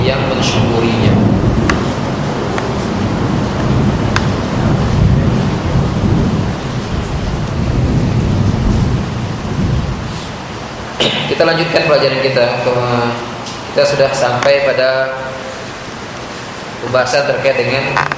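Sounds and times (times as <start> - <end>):
deep rumbling thunder: 0.0 - 12.0
heavy afternoon rain: 0.0 - 18.1
speech: 11.4 - 15.3, 16.8 - 18.1.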